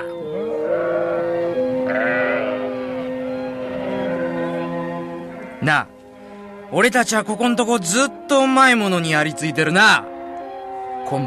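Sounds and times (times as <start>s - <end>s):
sheep bleating: 0.0s - 5.7s
speech: 5.6s - 5.9s, 6.7s - 10.1s, 11.1s - 11.2s.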